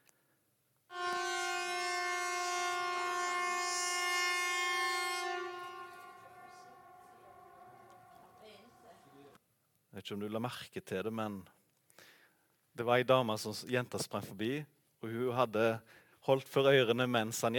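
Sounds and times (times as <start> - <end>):
air raid siren wailing: 0.9 - 9.1
speech: 10.0 - 11.6, 12.8 - 17.5.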